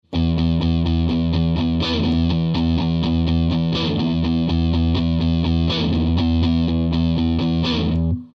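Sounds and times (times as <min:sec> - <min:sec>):
guitar riff: 0:00.0 - 0:08.3.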